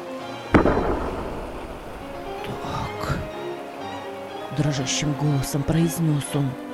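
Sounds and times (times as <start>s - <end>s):
flare gun firing with a sharp pop and crackling whoosh: 0.6s - 3.4s
speech: 4.6s - 6.7s.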